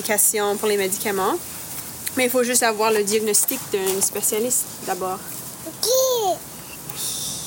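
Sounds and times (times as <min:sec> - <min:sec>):
speech: 0:00.0 - 0:07.1
baby babbling: 0:05.7 - 0:06.4.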